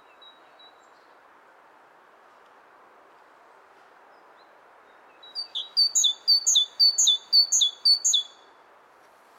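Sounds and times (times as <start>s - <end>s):
great tit singing a bright high two-note phrase: 4.9s - 8.3s.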